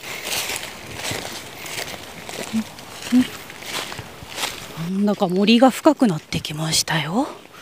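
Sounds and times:
footsteps crunching on dry fallen bamboo leaves in a bamboo grove: 0.0 - 6.4
speech: 2.5 - 3.4, 4.9 - 7.5.

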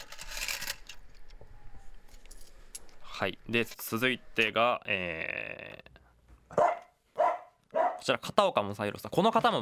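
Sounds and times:
coins clinking and jingling after money exchange: 0.0 - 1.0, 2.1 - 3.0
speech: 3.2 - 5.9, 8.0 - 9.5.

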